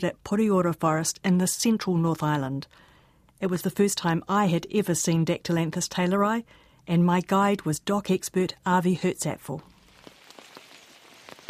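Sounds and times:
speech: 0.0s - 9.7s
steady rain pattering on foliage at the edge of Pureora Forest: 9.7s - 11.4s
water drips and drops from rain: 9.7s - 11.4s.

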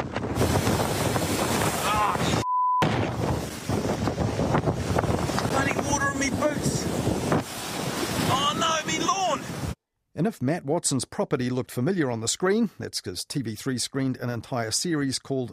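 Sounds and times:
strong storm wind battering a seaside house: 0.0s - 9.8s
rush of waves beneath a seaside house: 0.2s - 9.8s
short beep: 2.4s - 2.9s
speech: 10.2s - 15.5s.

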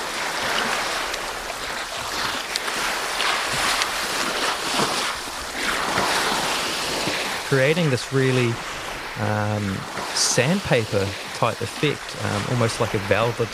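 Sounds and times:
ocean swell washing against an iceberg: 0.0s - 13.5s
speech: 7.5s - 13.5s.

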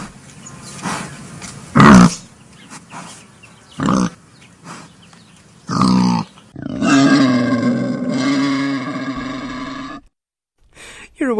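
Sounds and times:
wild boar grunting: 0.7s - 5.0s, 5.7s - 10.1s.

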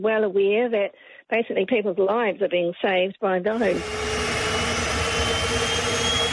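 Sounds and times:
speech: 0.0s - 4.2s
jet aircraft engine running during ground test: 3.5s - 6.3s.

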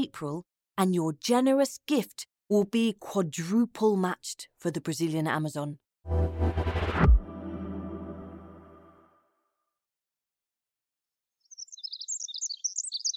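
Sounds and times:
speech: 0.0s - 6.7s
resonant musical chord: 6.1s - 9.2s
Pacific Wren singing: 11.4s - 13.1s.

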